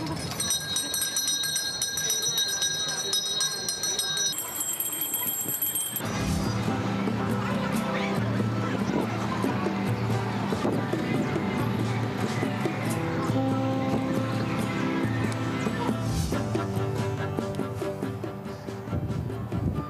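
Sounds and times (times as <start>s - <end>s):
street vendor's small bells ringing: 0.0s - 6.2s
busy outdoor street crowd noise with voices: 0.0s - 19.8s.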